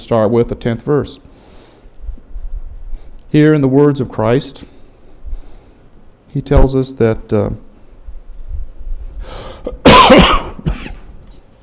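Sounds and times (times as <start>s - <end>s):
speech: 0.1s - 1.3s, 3.3s - 4.7s, 6.3s - 7.7s
person with a cold coughing: 9.7s - 11.1s.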